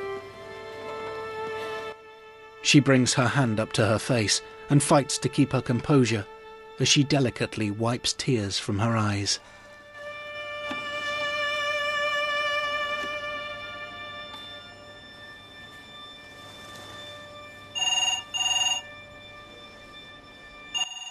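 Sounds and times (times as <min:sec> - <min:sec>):
soft sustained tonal background: 0:00.0 - 0:21.0
speech: 0:02.6 - 0:09.6
home telephone double ring: 0:13.6 - 0:21.0.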